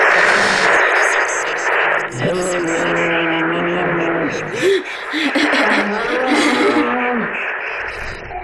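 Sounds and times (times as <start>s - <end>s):
sonification of the Ursa Major constellation with layered sustained electronic tones: 0.0s - 8.4s
steady noisy hiss: 0.0s - 8.4s
laughter: 2.2s - 7.5s.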